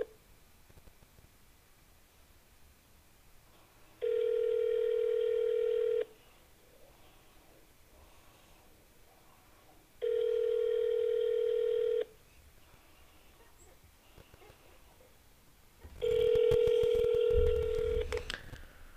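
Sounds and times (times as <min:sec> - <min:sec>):
low noise: 0:00.0 - 0:18.9
phone ringback tones with no answer: 0:04.0 - 0:06.1, 0:10.0 - 0:12.1, 0:16.0 - 0:18.2.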